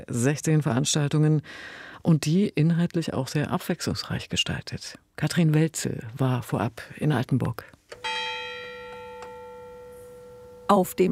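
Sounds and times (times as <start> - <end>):
speech: 0.0 - 8.2, 10.7 - 11.1
church bell of a castle church on a hilltop ringing: 8.0 - 11.1.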